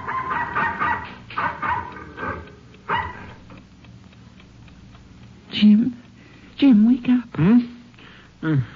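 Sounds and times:
dog barking: 0.0 - 2.1, 2.9 - 3.4
speech: 5.6 - 6.0, 6.6 - 7.7, 8.4 - 8.7.

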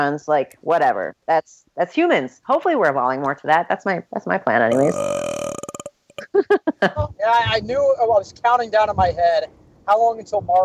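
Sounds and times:
speech: 0.0 - 5.2, 6.4 - 10.6
vocal sounds: 4.6 - 6.4
loud burp: 4.7 - 6.3.

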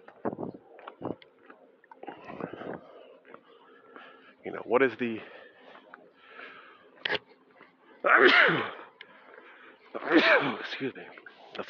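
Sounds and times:
quiet noise: 0.0 - 11.6
speech: 4.4 - 5.4, 10.8 - 11.6
person sneezing: 8.1 - 8.8, 10.0 - 10.6.

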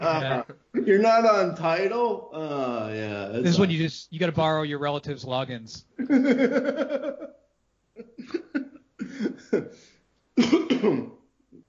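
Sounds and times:
laughter: 0.0 - 0.6, 6.0 - 7.4, 8.0 - 9.8
speech: 0.0 - 7.4, 9.5 - 11.1
person in a loud coughing fit: 8.0 - 9.8, 10.4 - 11.2.

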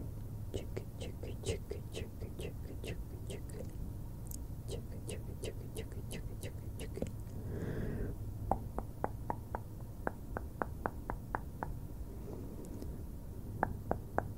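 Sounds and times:
steady low hum: 0.0 - 14.3
crisp wet mouth clicking sounds: 0.5 - 7.4, 8.5 - 11.8.

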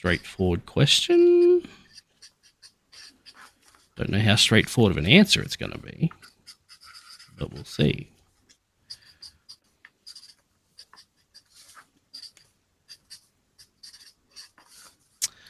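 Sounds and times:
speech: 0.0 - 1.3, 4.0 - 6.2, 7.4 - 8.1
pen scratching across paper while writing by hand: 1.4 - 4.6, 5.8 - 7.9, 8.5 - 15.2.

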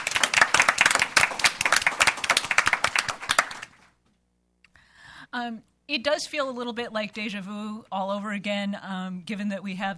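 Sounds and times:
audience applause: 0.0 - 3.8
speech: 5.4 - 9.9.

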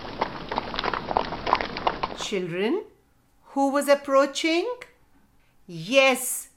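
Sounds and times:
horse hooves galloping: 0.0 - 2.3
speech: 2.2 - 2.9, 3.6 - 4.9, 5.7 - 6.5.

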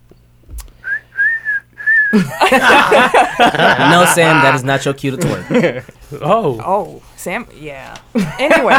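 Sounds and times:
whistle blasts: 0.8 - 2.2
noisy commotion with voices: 0.8 - 8.7
laughter: 1.8 - 8.7
speech: 2.1 - 8.7.

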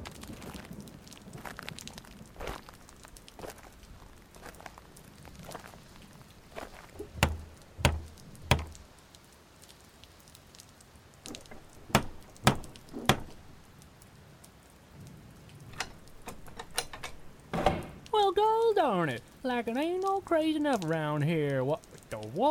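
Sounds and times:
banging on a door: 7.0 - 8.8, 11.3 - 13.6, 15.8 - 18.0
speech: 18.4 - 22.4.

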